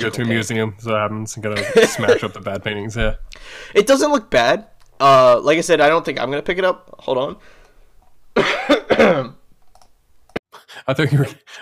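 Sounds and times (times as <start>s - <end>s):
speech: 0.0s - 7.6s, 10.9s - 11.6s
laughter: 1.5s - 2.6s
harsh throaty cough from something in the throat: 8.4s - 9.4s.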